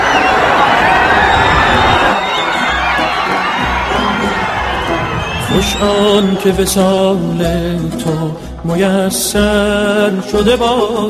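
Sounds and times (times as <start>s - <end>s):
overlapping yells rising above the crowd: 0.0s - 6.8s
large crowd shouting and cheering as a leader's car passes: 0.0s - 8.1s
speech: 5.6s - 11.0s.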